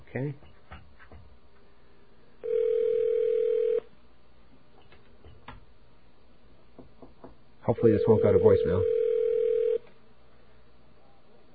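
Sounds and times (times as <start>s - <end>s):
speech: 0.1s - 0.5s, 7.7s - 9.0s
telephone line tone while calling back: 2.4s - 3.9s, 7.8s - 9.8s.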